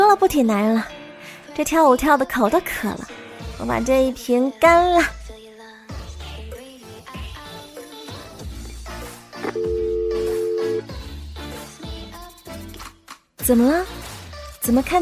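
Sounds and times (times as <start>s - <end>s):
speech: 0.2s - 1.0s, 1.6s - 5.2s, 13.5s - 14.0s, 14.6s - 15.0s
phone ringing with a steady electronic tone: 9.4s - 10.8s.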